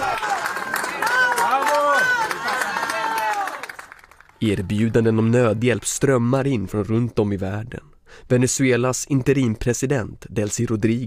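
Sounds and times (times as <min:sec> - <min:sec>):
people shouting excitedly: 0:00.0 - 0:03.6
crowd clapping and cheering outdoors for rescue workers: 0:00.0 - 0:05.2
speech: 0:04.4 - 0:11.0.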